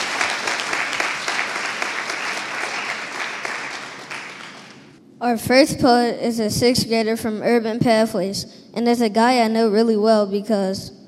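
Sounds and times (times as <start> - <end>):
crowd applauding: 0.0 - 5.0
speech: 5.2 - 11.0.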